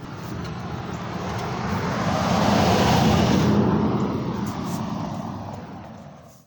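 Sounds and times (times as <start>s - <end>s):
car passing by: 0.0s - 6.4s.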